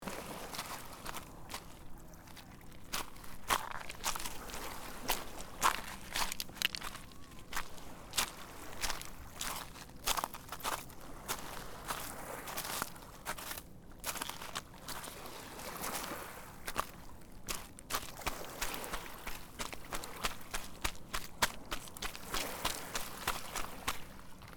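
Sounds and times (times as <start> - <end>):
walking on stone beach: 0.0 - 24.5.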